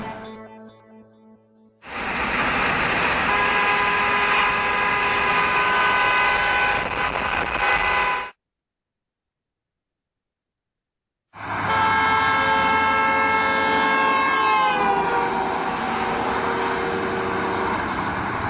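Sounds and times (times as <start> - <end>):
horn of a speeding car blaring: 1.3 - 8.4, 11.6 - 18.3.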